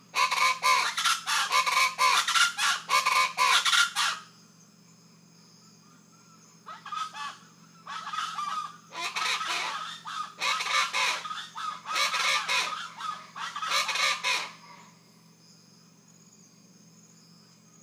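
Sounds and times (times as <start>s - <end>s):
rufous-vented chachalacas cackling chorus: 0.2s - 4.2s, 6.7s - 14.9s.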